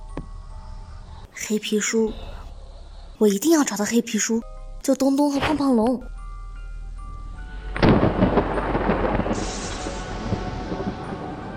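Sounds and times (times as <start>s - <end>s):
speech: 1.4s - 2.3s, 3.2s - 6.2s
steady rain-like hiss: 7.6s - 11.5s
loud crack of thunder from a heavy lightning strike: 7.7s - 11.5s.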